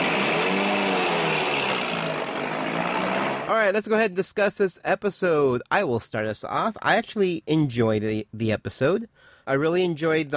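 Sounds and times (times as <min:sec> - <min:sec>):
engine starting and revving: 0:00.0 - 0:03.5
speech: 0:03.5 - 0:10.3.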